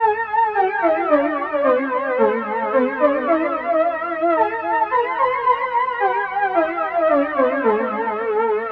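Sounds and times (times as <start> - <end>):
80s synthwave lead melody: 0.5 - 8.7.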